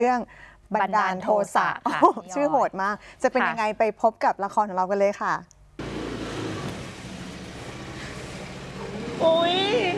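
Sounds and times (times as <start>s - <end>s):
speech: 0.0s - 5.6s, 9.2s - 9.9s
broadband road noise: 5.8s - 9.9s
car engine humming while driving: 5.8s - 9.9s.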